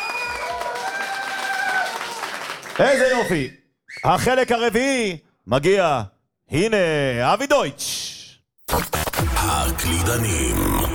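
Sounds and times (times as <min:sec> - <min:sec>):
audience applause at a live keyboard players' competition final: 0:00.0 - 0:03.4
speech: 0:02.8 - 0:10.9.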